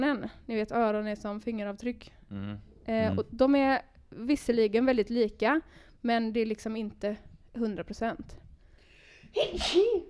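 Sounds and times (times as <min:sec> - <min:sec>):
speech: 0:00.0 - 0:08.4, 0:09.3 - 0:10.0
person sneezing: 0:09.4 - 0:10.0.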